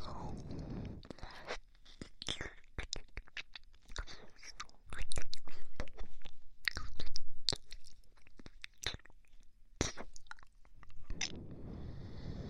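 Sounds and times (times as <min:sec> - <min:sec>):
soft low breathy rushes: 0:00.0 - 0:01.6, 0:11.0 - 0:12.4
wet mouth sounds of someone licking an ice pop: 0:00.3 - 0:10.5.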